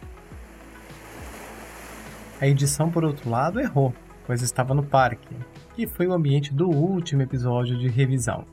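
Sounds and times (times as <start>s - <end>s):
ocean surf near the shore at Enoshima Japan: 0.0s - 3.8s
speech: 2.4s - 8.5s.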